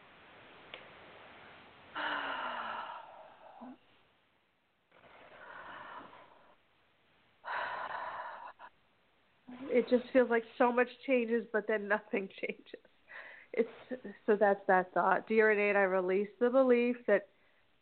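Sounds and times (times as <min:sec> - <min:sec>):
deep breathing: 0:01.9 - 0:03.9, 0:04.9 - 0:06.6, 0:07.4 - 0:08.8, 0:13.1 - 0:13.6
speech: 0:03.6 - 0:03.9, 0:09.8 - 0:12.9, 0:13.6 - 0:17.3.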